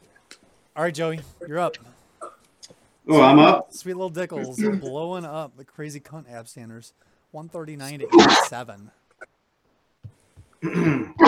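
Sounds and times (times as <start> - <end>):
speech: 0.8 - 2.0, 3.1 - 9.3, 10.6 - 11.2
person sneezing: 10.6 - 11.2.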